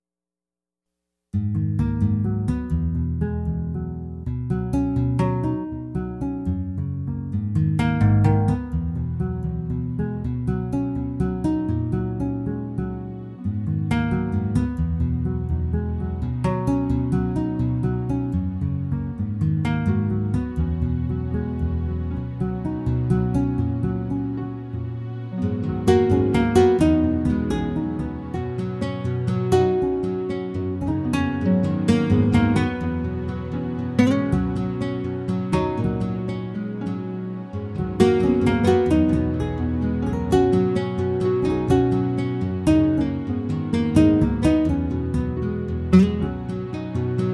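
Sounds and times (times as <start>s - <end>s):
guitar music: 1.4s - 47.3s.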